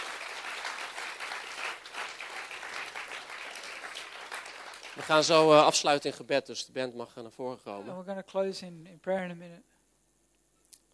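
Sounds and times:
audience applauding: 0.0s - 5.8s
speech: 5.0s - 9.7s.

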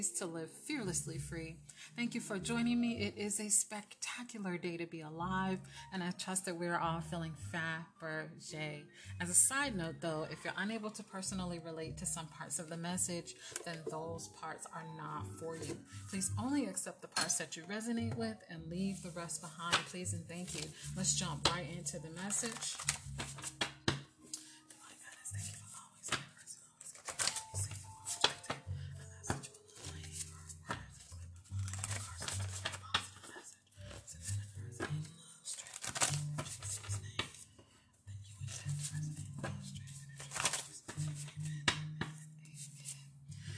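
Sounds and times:
speech: 0.0s - 23.8s
jar cards shuffled in a jar for a card reading: 22.2s - 23.8s, 26.9s - 28.6s, 29.3s - 33.4s, 34.2s - 37.4s, 38.5s - 43.0s.

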